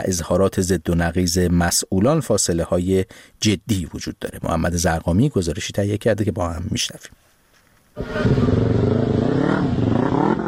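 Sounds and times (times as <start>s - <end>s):
speech: 0.0s - 7.2s, 8.0s - 9.2s
motorcycle engine starting and revving: 8.0s - 10.4s.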